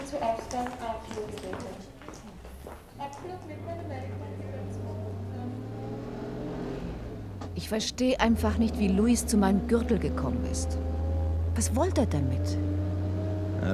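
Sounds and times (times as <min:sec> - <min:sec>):
speech: 0:00.1 - 0:04.6, 0:07.6 - 0:11.0, 0:11.6 - 0:12.8
car engine drone while driving: 0:03.4 - 0:13.7.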